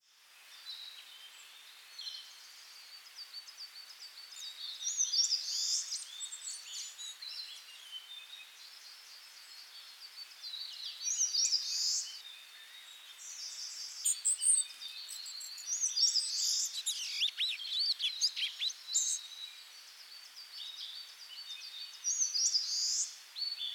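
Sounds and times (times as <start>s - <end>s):
birds in Karuizawa: 0.0s - 23.7s.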